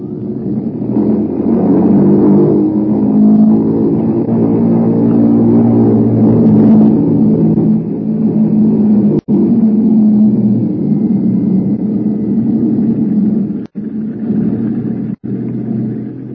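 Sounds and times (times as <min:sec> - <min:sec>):
heavy bomber engines running up on a runway: 0:00.0 - 0:16.3.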